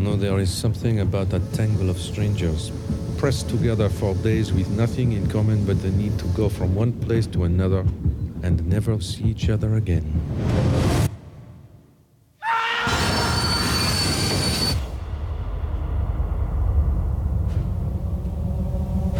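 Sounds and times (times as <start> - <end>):
speech: 0.0 - 10.8
train rumbling along the rails: 0.0 - 11.2, 13.4 - 19.1
shrill metallic train wheel squeal: 12.9 - 15.0.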